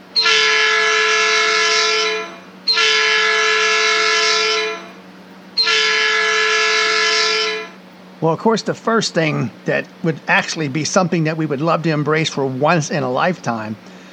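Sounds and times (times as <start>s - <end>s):
train horn blasts at a town intersection: 0.0s - 5.0s, 5.6s - 7.8s
speech: 8.2s - 13.9s.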